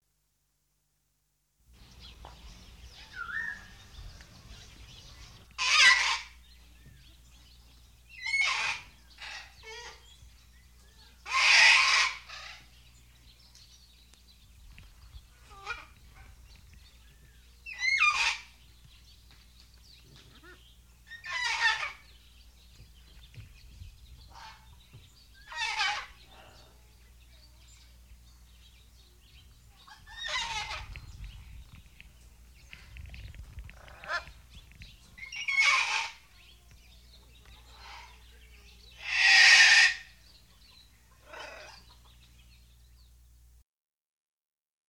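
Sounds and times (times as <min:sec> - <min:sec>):
exotic bird: 0:01.8 - 0:43.1.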